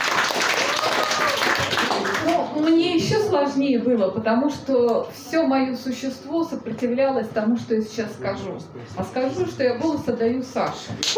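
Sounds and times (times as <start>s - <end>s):
audience applause: 0.0s - 2.7s
speech: 3.3s - 11.1s.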